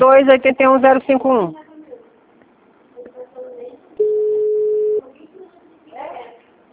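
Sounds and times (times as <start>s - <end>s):
speech: 0.0s - 1.6s
telephone ringing tone on an unanswered call: 4.0s - 5.0s.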